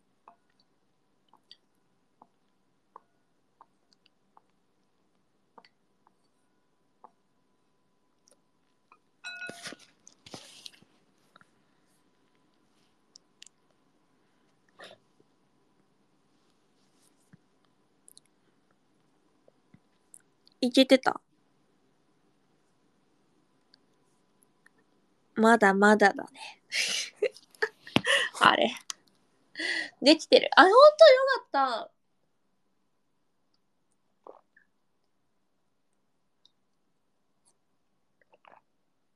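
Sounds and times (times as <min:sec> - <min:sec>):
speech: 0:20.6 - 0:21.2, 0:25.4 - 0:27.2, 0:28.4 - 0:28.9, 0:29.6 - 0:32.0
wet mouth clicks and drips: 0:34.2 - 0:34.7, 0:38.2 - 0:38.7.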